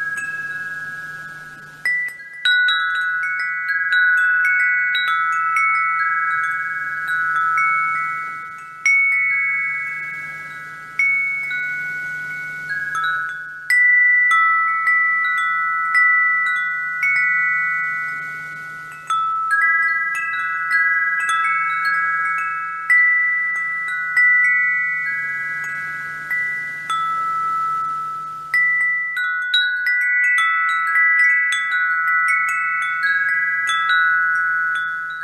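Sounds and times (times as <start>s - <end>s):
soft low hum: 0.0s - 2.4s, 6.4s - 14.1s, 15.0s - 19.5s, 22.0s - 29.2s
metal wind chimes ringing in the breeze: 0.0s - 35.2s.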